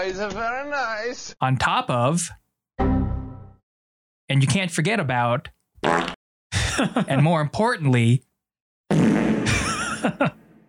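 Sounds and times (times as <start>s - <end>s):
speech: 0.0s - 2.9s, 4.3s - 6.1s, 6.8s - 8.3s, 10.0s - 10.4s
fart sound effect with reverb: 5.8s - 6.2s, 8.9s - 9.7s.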